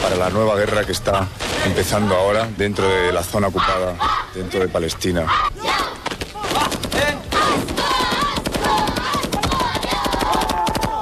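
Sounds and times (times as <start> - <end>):
speech: 0.1 - 5.8
people shouting loudly: 3.0 - 10.9
automatic gunfire: 6.5 - 10.9.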